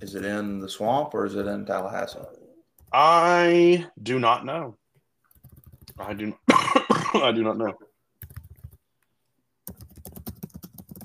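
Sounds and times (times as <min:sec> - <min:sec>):
speech: 0:00.0 - 0:04.8, 0:06.0 - 0:07.9
rapid forceful typing on a computer keyboard: 0:05.3 - 0:06.3, 0:08.2 - 0:08.8, 0:09.6 - 0:11.0.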